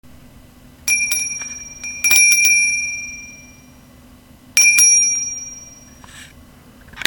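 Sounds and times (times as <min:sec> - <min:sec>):
angel bell: 0:00.9 - 0:03.8, 0:04.6 - 0:06.0.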